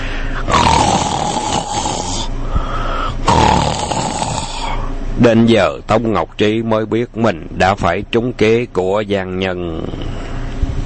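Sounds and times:
loud snoring from a collapsed man: 0.4s - 4.9s
speech: 5.2s - 10.2s.

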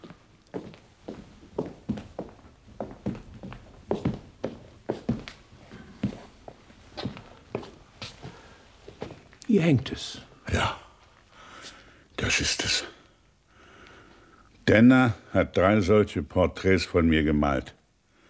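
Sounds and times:
soft footsteps of someone walking toward a portrait on a wall: 0.0s - 10.3s, 11.0s - 11.8s
speech: 9.5s - 10.8s, 12.3s - 12.9s, 14.7s - 17.8s.

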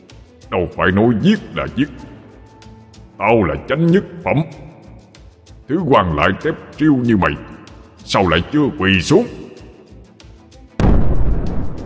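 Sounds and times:
speech: 0.5s - 2.1s, 3.2s - 4.7s, 5.7s - 7.5s, 8.1s - 9.4s
explosion boom across a stage: 10.8s - 11.8s.

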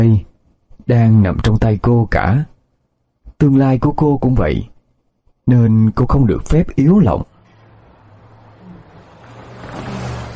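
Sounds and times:
speech: 0.0s - 0.3s, 0.9s - 2.5s, 3.4s - 4.7s, 5.5s - 7.3s
car engine rumble while driving in through a south gate: 7.2s - 10.3s.

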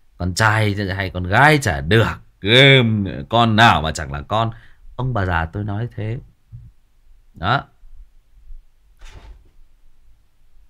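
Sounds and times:
speech: 0.2s - 6.3s, 7.4s - 7.7s
banging on a door: 9.0s - 9.7s.

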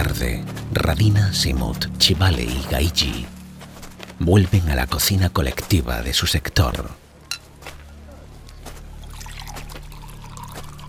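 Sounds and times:
low steady hum: 0.0s - 10.8s
speech: 0.1s - 3.4s, 4.2s - 7.0s
water poured for friends in a communal kitchen: 8.9s - 10.8s.

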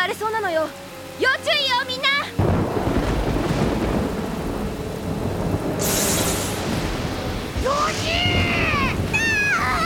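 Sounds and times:
heavy rain pouring over the sea: 0.0s - 9.8s
speech: 0.2s - 2.0s
low rumbling thunder over the sea: 2.4s - 9.8s
bright high-pitched rush of wind or spray: 5.6s - 9.4s.

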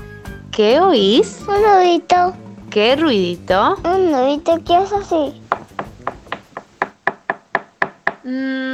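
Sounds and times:
speech: 0.6s - 5.4s, 8.3s - 8.7s
knocking on a door: 5.5s - 8.3s.

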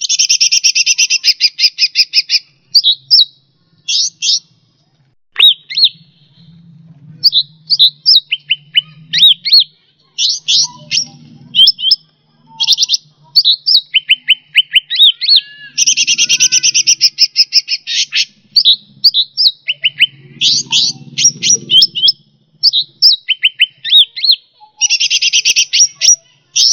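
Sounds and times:
bird song with high chirps, slurred whistles and buzzy trills: 0.0s - 4.6s, 5.4s - 26.7s
low hum: 4.4s - 13.3s, 18.2s - 23.0s.

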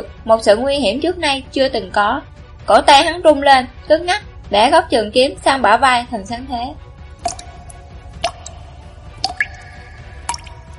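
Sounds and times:
speech: 0.2s - 6.8s
blood dripping onto ice: 7.1s - 10.7s.

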